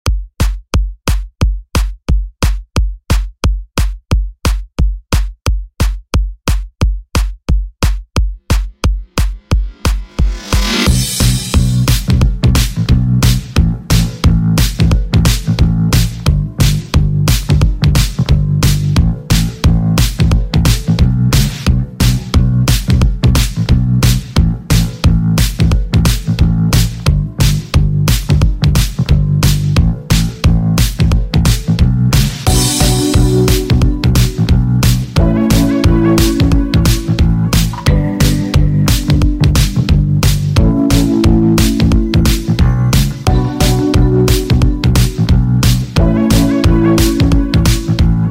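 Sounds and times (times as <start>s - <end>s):
80s funk drum loop: 0.1s - 48.2s.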